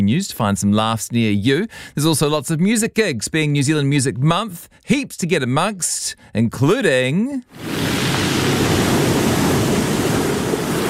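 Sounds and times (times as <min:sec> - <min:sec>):
speech: 0:00.0 - 0:08.1
large ocean waves crashing: 0:07.5 - 0:10.8.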